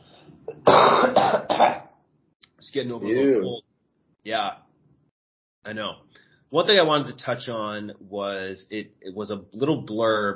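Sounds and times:
person clearing throat: 0:00.5 - 0:01.9
person coughing in harsh bursts: 0:00.5 - 0:01.9
speech: 0:02.8 - 0:03.6, 0:04.2 - 0:04.6, 0:05.6 - 0:10.3.

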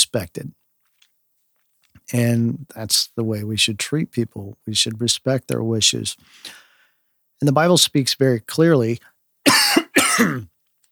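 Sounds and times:
speech: 0:00.1 - 0:00.6, 0:02.1 - 0:06.6, 0:07.4 - 0:10.5
harsh coughs: 0:09.5 - 0:10.5.

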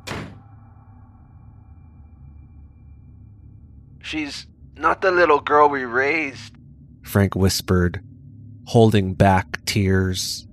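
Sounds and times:
heavy door slamming shut: 0:00.0 - 0:00.5
low rumble of door settling: 0:00.0 - 0:00.7
speech: 0:04.0 - 0:08.1, 0:08.7 - 0:10.5.

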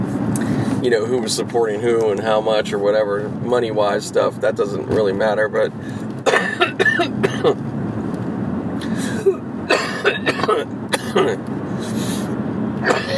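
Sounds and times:
constant low rumble of noise: 0:00.0 - 0:13.1
speech: 0:00.8 - 0:06.1, 0:07.0 - 0:07.7
harsh coughs and throat clearing from a lingering cough: 0:06.2 - 0:07.6, 0:09.1 - 0:11.4, 0:12.8 - 0:13.1.

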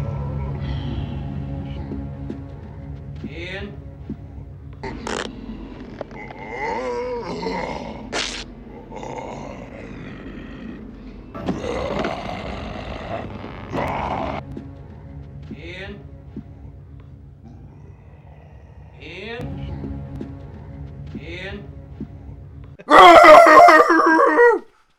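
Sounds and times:
speech: 0:03.4 - 0:03.8
man groaning and growling: 0:06.1 - 0:14.4, 0:17.4 - 0:19.4, 0:22.8 - 0:24.6
man roaring in imitation of a werewolf transformation: 0:06.2 - 0:14.4, 0:22.8 - 0:24.6.

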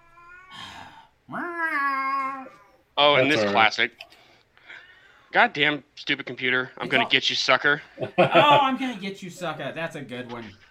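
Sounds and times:
speech: 0:01.3 - 0:01.5, 0:03.0 - 0:04.2, 0:05.3 - 0:10.6
cat in heat yowling: 0:01.3 - 0:02.8
laughter: 0:07.9 - 0:09.0.

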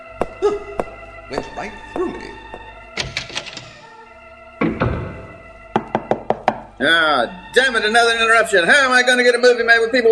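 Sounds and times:
speech: 0:01.3 - 0:02.7, 0:06.8 - 0:10.1
knocking on an office door: 0:04.6 - 0:06.7.

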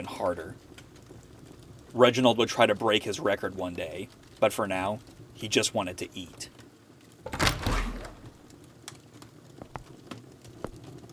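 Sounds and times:
speech: 0:00.0 - 0:00.7, 0:01.9 - 0:06.6
faint scattered clicks and ticks: 0:00.0 - 0:07.3, 0:08.4 - 0:11.1
doors creaking open: 0:07.3 - 0:08.4.

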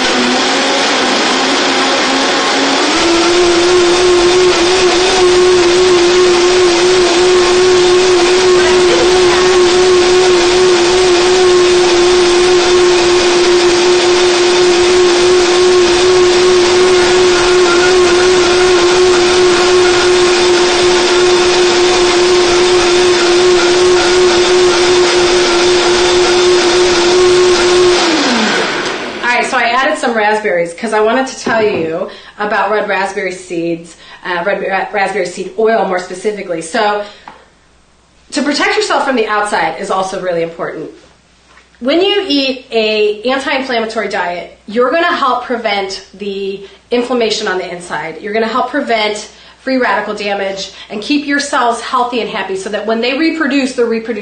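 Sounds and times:
blender blending an anti-inflammatory smoothie: 0:00.0 - 0:30.2, 0:31.5 - 0:32.0
speech: 0:30.9 - 0:37.4, 0:38.3 - 0:41.0, 0:41.8 - 0:54.2.

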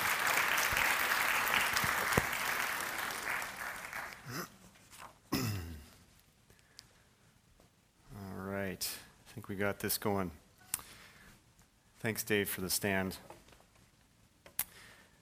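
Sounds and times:
room full of people applauding: 0:00.0 - 0:04.4
speech: 0:09.5 - 0:10.4, 0:12.0 - 0:13.4.

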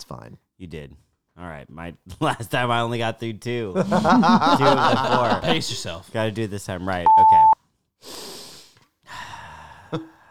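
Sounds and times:
speech: 0:00.1 - 0:08.4, 0:09.9 - 0:10.1
laughter: 0:03.8 - 0:05.8
long breathy inhalations before speaking: 0:08.0 - 0:09.8.

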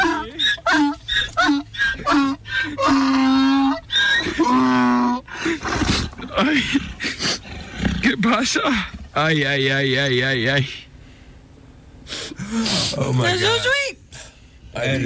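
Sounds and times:
donkey braying: 0:00.0 - 0:09.2
speech: 0:08.3 - 0:10.8, 0:12.6 - 0:13.8, 0:14.8 - 0:15.0.

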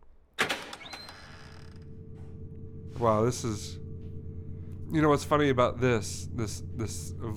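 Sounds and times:
door hinges creaking as the door is pushed open: 0:00.4 - 0:01.9
quiet room hum: 0:00.4 - 0:07.3
speech: 0:03.0 - 0:03.8, 0:04.9 - 0:07.3.

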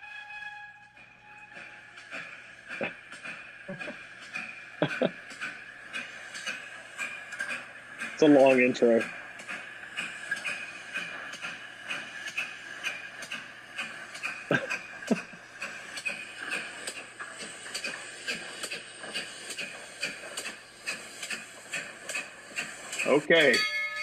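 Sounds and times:
train rumbling past: 0:00.0 - 0:24.0
train wheels clacking over the rails: 0:00.1 - 0:24.0
laughter: 0:03.7 - 0:04.0, 0:04.8 - 0:05.3, 0:14.5 - 0:15.5
speech: 0:08.2 - 0:09.2, 0:23.3 - 0:23.7.

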